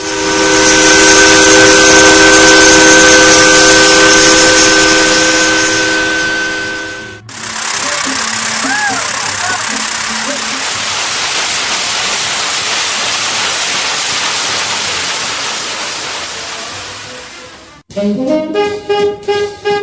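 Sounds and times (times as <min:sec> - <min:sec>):
steamboat steam whistle blaring: 0:00.0 - 0:10.9, 0:17.9 - 0:19.8
steamboat steam engine hissing: 0:00.0 - 0:17.8.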